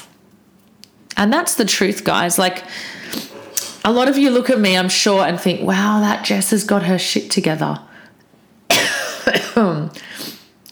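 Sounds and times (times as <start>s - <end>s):
speech: 1.2s - 7.9s
person coughing: 8.7s - 10.4s.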